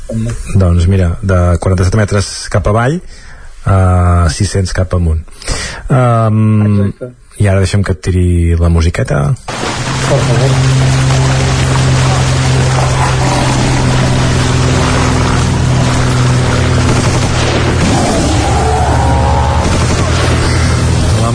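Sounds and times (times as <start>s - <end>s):
speech: 0.1s - 11.1s
rattling bursts of gunfire: 9.5s - 21.1s
heavy booms: 9.5s - 21.3s
propeller engine drone: 9.5s - 21.3s.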